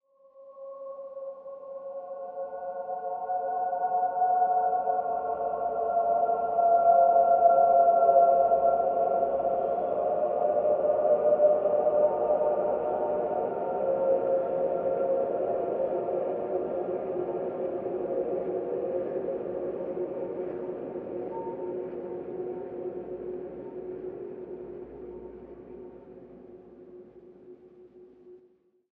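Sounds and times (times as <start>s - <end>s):
choir singing in Salzburg: 2.1s - 24.6s.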